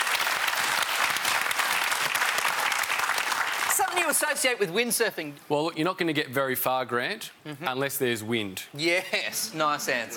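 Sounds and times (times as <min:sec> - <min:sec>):
audience clapping: 0:00.0 - 0:04.3
speech: 0:04.0 - 0:10.1.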